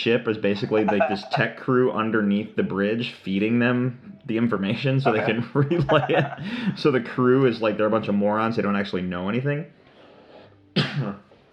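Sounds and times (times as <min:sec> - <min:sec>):
speech: 0:00.0 - 0:09.8, 0:10.8 - 0:11.3
laughter: 0:00.5 - 0:01.6, 0:05.0 - 0:07.2
person coughing from swallowing wrong: 0:05.1 - 0:06.7, 0:10.8 - 0:11.2.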